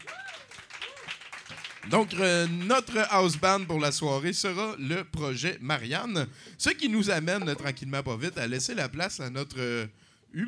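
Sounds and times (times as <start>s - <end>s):
crowd whoops and cheers: 0.0s - 1.2s
crowd applauding with dense continuous clapping: 0.0s - 3.1s
speech: 1.8s - 10.4s.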